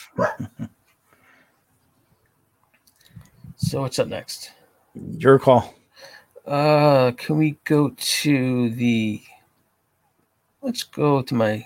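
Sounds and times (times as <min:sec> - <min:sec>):
dog barking: 0:00.0 - 0:00.5
speech: 0:03.7 - 0:05.8, 0:06.5 - 0:09.3, 0:10.6 - 0:11.6.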